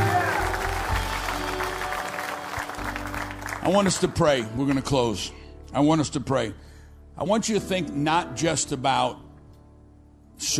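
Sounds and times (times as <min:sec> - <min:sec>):
audience applause: 0:00.0 - 0:04.2
speech: 0:03.7 - 0:09.2, 0:10.4 - 0:10.5.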